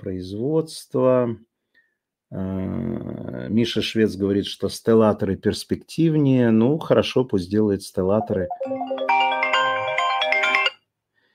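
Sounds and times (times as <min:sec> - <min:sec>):
speech: 0:00.0 - 0:01.5, 0:02.3 - 0:09.0
phone ringtone with bright electronic melody: 0:08.2 - 0:10.9.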